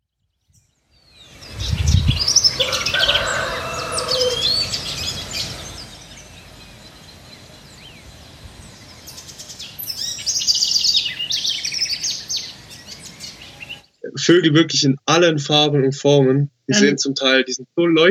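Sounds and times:
birds chirping and singing: 0.4s - 14.0s
speech: 14.3s - 18.0s.

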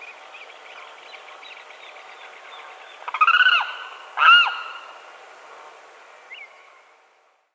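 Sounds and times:
steady background hiss: 0.0s - 7.5s
Aramus guarauna limpkin giving loud harsh wailing calls: 3.0s - 4.9s.

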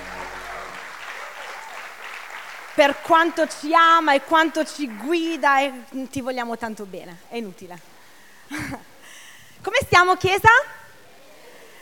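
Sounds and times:
low hum: 0.0s - 1.4s
applause from a church congregation at a Sunday service: 0.0s - 5.8s
speech: 2.8s - 7.9s, 9.9s - 10.8s.

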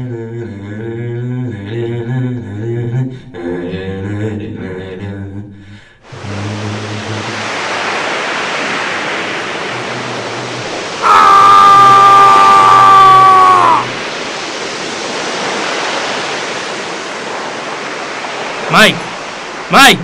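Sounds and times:
strong movement of water and splashing in a dramatized scene: 6.0s - 20.0s.

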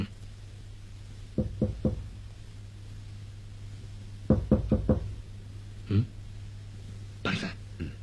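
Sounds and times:
knuckles knocking on a door: 1.4s - 2.1s, 4.3s - 5.2s.

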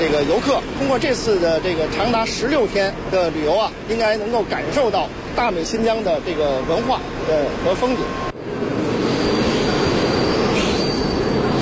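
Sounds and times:
speech: 0.0s - 8.3s
high-pitched squeal from tourist special train wheels: 8.0s - 11.6s
tourist special train wheels rumbling on rails: 8.4s - 11.6s.

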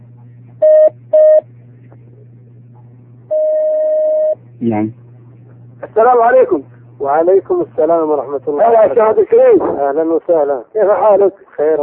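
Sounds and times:
low hum on a telephone line: 0.0s - 11.8s
telephone line beeps as a call connects: 0.6s - 1.5s, 3.3s - 4.4s
speech: 4.6s - 5.0s, 6.0s - 11.8s.

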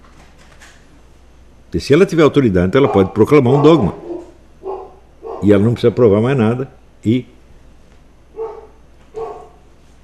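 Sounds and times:
speech: 1.7s - 4.0s, 5.4s - 7.4s
small female dog barking: 2.8s - 5.5s, 8.3s - 9.6s.

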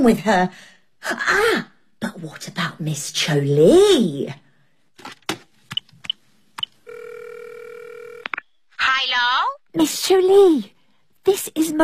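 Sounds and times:
speech: 0.0s - 4.4s, 9.1s - 11.8s
steady continuous telephone tone: 6.8s - 8.3s.

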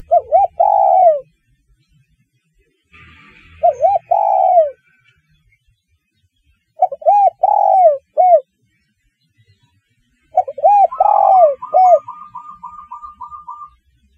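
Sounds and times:
spotted dove coo phrases: 0.0s - 1.2s, 3.6s - 4.8s, 6.8s - 8.4s, 10.4s - 13.8s.

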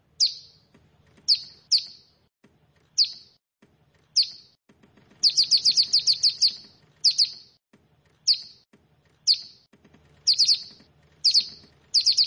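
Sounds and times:
Bar-winged prinia chirping: 0.2s - 2.2s, 2.9s - 3.4s, 4.2s - 4.6s, 5.2s - 7.6s, 8.2s - 8.6s, 9.2s - 9.6s, 10.2s - 12.2s.

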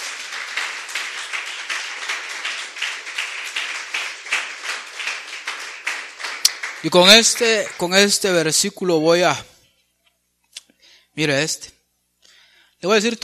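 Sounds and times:
church congregation applauding in praise: 0.0s - 8.8s
speech: 6.8s - 9.5s, 11.2s - 11.8s, 12.8s - 13.2s.

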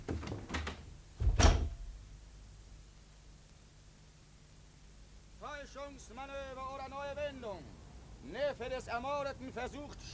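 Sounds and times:
door opening and closing: 0.1s - 1.9s
door clicks and knocks: 0.2s - 1.9s
heavy door thud: 0.5s - 2.0s
speech: 5.7s - 10.1s.

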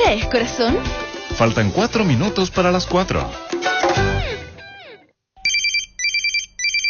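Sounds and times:
speech: 0.1s - 3.5s
electronic telephone trilling rings in a radio advertisement: 5.5s - 6.8s.

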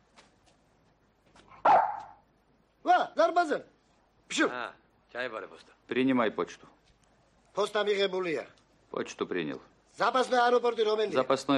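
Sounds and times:
shaggy dog barking as it leaps from a helicopter door: 1.6s - 2.2s
speech: 3.1s - 3.7s, 4.3s - 6.8s, 7.6s - 11.5s.

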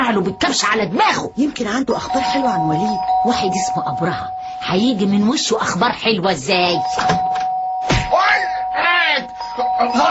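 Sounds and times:
doorbell rung insistently: 0.0s - 5.8s, 6.5s - 10.1s
speech: 0.1s - 7.3s, 9.8s - 10.1s.

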